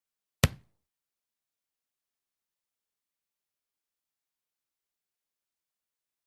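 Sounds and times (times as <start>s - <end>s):
football kick: 0.4s - 0.7s.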